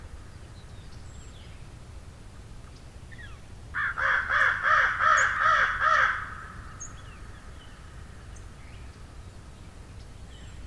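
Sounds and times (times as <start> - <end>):
crow giving rough grating caws: 3.8 - 6.6.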